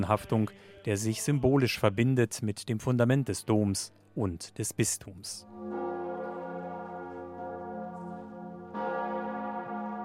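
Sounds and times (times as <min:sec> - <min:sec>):
speech: 0:00.0 - 0:05.6
large deep cathedral bell ringing: 0:05.4 - 0:10.0.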